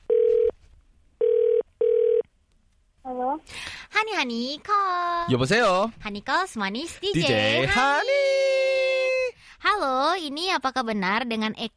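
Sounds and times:
electronic ringback tones of an outgoing phone call: 0:00.1 - 0:00.5, 0:01.2 - 0:02.2
speech: 0:03.4 - 0:08.4, 0:09.8 - 0:11.7.

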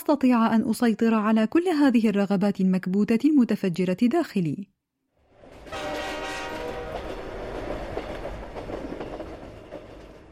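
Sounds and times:
speech: 0:00.0 - 0:04.8
train roaring as it enters station: 0:05.2 - 0:10.3
horn-like tonal blare of train: 0:05.7 - 0:07.4.

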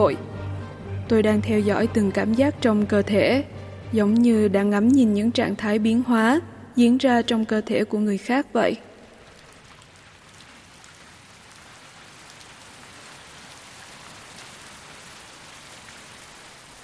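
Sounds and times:
speech: 0:00.0 - 0:00.3, 0:01.1 - 0:08.9
heavy rain pattering on surfaces: 0:09.0 - 0:16.8.

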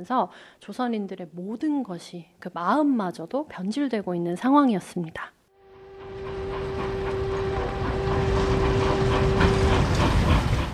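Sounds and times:
speech: 0:00.0 - 0:05.4
train rumbling and rattling arriving at a station: 0:05.7 - 0:10.7.

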